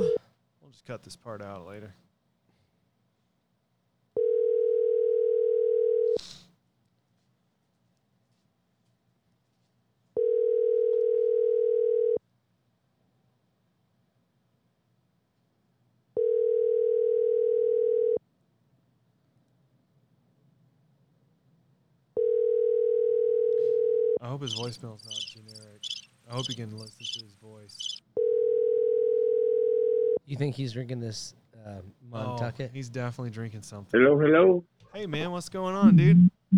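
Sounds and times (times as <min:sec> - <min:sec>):
speech: 0:00.8 - 0:02.1, 0:24.3 - 0:28.0, 0:30.3 - 0:36.5
low buzzing telephone ringback tones while a call waits to connect: 0:04.2 - 0:06.2, 0:10.2 - 0:12.2, 0:16.2 - 0:18.2, 0:22.2 - 0:24.2, 0:28.2 - 0:30.2.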